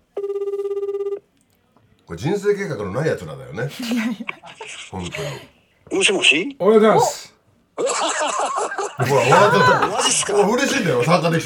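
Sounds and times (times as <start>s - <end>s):
telephone ringback tone on an outgoing call: 0.1s - 1.2s
speech: 2.1s - 7.3s, 9.0s - 11.4s
laughter: 3.7s - 5.5s, 7.8s - 11.4s.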